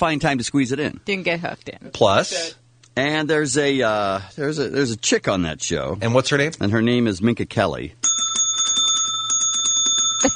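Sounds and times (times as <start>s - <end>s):
speech: 0.0s - 8.2s
bell ringing: 8.0s - 10.3s.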